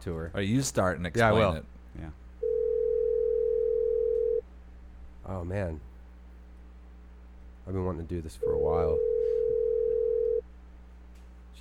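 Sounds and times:
speech: 0.0 - 2.2, 5.3 - 5.9, 7.7 - 9.1
telephone ringing tone on the line: 2.4 - 4.4, 8.4 - 10.4.

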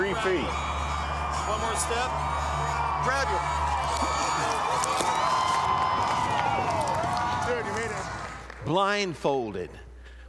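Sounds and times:
large crowd cheering and shouting: 0.0 - 8.5
speech: 0.2 - 0.7, 1.5 - 5.3, 8.6 - 9.9
sharp whoops: 0.4 - 8.1.

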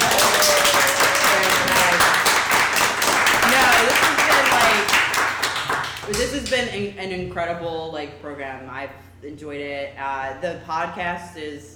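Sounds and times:
indistinct voices and cheers: 0.0 - 2.0
crowd applauding: 0.0 - 6.3
speech: 6.6 - 11.7.

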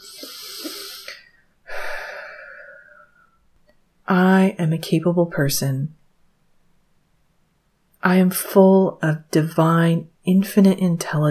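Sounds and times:
deep breath in through the nose, out through the mouth: 0.0 - 3.5
speech: 4.1 - 6.0, 8.1 - 11.3.

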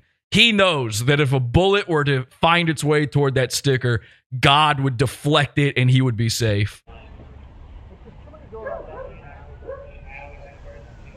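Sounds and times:
speech: 0.3 - 6.9
agitated dog barking and whimpering: 8.6 - 10.4.

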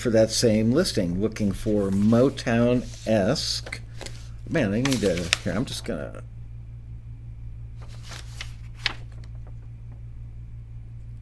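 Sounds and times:
speech: 0.0 - 3.8, 4.5 - 6.3
steady low electrical hum: 0.0 - 11.1
paper pages being handled and turned: 1.4 - 6.0, 7.8 - 9.7.

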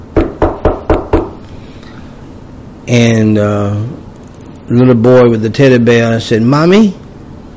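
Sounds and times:
bill collector knocking hard on a door: 0.2 - 1.4
speech: 2.9 - 4.0, 4.7 - 7.0.

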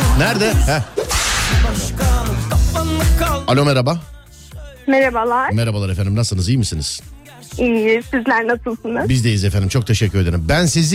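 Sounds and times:
low musical backdrop: 0.0 - 10.9
speech: 0.2 - 2.1, 2.8 - 4.1, 4.9 - 10.9
whip cracks: 1.0 - 1.8.

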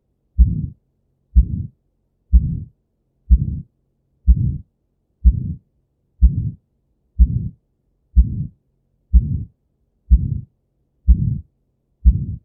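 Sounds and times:
heart with aortic stenosis beating with a sharp low thud: 0.4 - 0.8, 1.4 - 1.7, 2.3 - 2.7, 3.3 - 3.7, 4.3 - 4.6, 5.2 - 5.6, 6.2 - 6.6, 7.2 - 7.6, 8.2 - 8.5, 9.1 - 9.5, 10.1 - 10.5, 11.1 - 11.4, 12.0 - 12.4.

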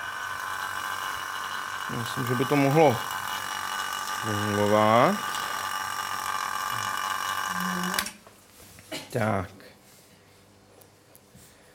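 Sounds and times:
vacuum pump pumping air out of a vessel holding a small bell: 0.0 - 8.2
speech: 1.9 - 3.2, 4.2 - 5.3, 7.6 - 8.1, 9.1 - 9.6.

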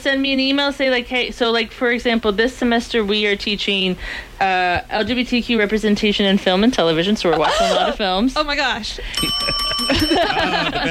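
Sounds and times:
speech: 0.0 - 10.8
laughter: 7.2 - 8.1, 9.1 - 10.8
bell ringing: 9.2 - 10.8.

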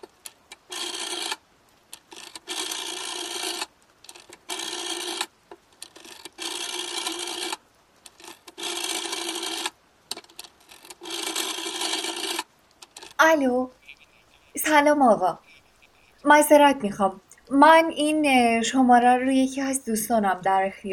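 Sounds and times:
telephone number being dialed on a rotary phone: 0.0 - 1.4, 2.0 - 13.2, 13.8 - 14.7, 15.4 - 16.2
speech: 13.3 - 13.8, 14.6 - 15.4, 16.2 - 20.9.

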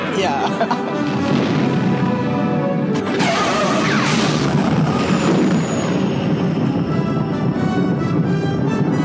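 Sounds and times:
speech: 0.2 - 1.2
laughter: 0.3 - 1.0
sustained booming debris: 0.9 - 2.3, 3.0 - 7.1
bright crackling burst of reactor explosion: 0.9 - 8.7
sci-fi space station reactor explosion roaring rumble: 0.9 - 8.9.

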